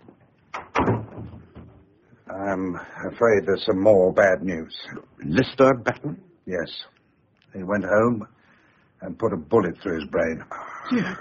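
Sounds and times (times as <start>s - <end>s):
door being shut: 0.5s - 1.9s
speech: 2.4s - 8.4s, 9.0s - 11.2s.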